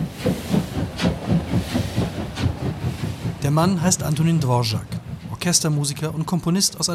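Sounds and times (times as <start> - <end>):
steam locomotive hissing at the Franz-Josefs railway station in Prague: 0.0 - 6.9
steam locomotive low rumbling chug: 0.0 - 6.9
speech: 3.5 - 6.9.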